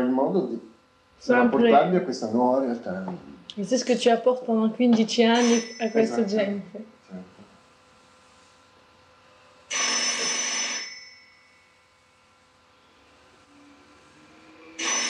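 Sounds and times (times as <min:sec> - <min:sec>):
speech: 0:00.2 - 0:07.3
telephone ringing: 0:05.4 - 0:06.3, 0:09.7 - 0:11.5, 0:14.8 - 0:15.0.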